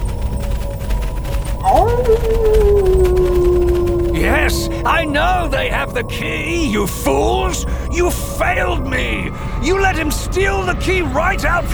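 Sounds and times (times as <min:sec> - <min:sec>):
constant low rumbling background: 0:00.0 - 0:11.7
wolf howling: 0:01.4 - 0:09.1
speech: 0:04.5 - 0:11.7.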